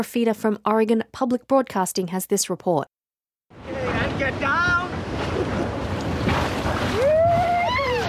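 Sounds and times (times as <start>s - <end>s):
speech: 0.0s - 3.0s
rafters splashing through churning river rapids: 3.6s - 8.0s
person letting out a long rising whoop: 6.9s - 8.0s.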